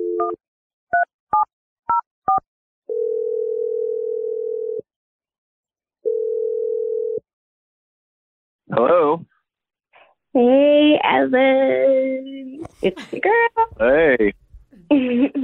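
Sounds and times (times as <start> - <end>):
long continuous telephone dial tone: 0.0 - 0.4, 2.9 - 4.9, 6.0 - 7.2
speech: 0.2 - 1.1, 8.7 - 9.3, 10.3 - 15.4
two-tone telephone keypad beeps dialing a number: 1.0 - 2.4.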